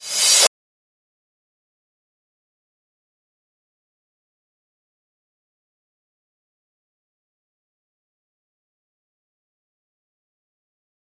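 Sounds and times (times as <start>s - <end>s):
short high sharp reversed sound: 0.0s - 0.5s.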